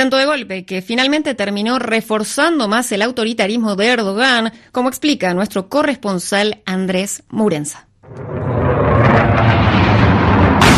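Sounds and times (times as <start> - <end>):
speech: 0.0 - 8.4
F-16 fighter jet roaring over Ankara during a coup attempt: 8.0 - 10.7
bomb exploding on the presidential palace in Ankara: 8.0 - 10.7.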